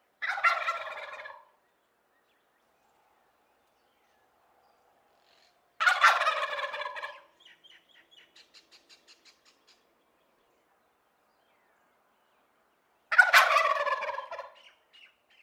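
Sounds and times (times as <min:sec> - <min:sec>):
turkey gobbling: 0:00.2 - 0:01.6, 0:05.8 - 0:07.4, 0:13.1 - 0:14.8.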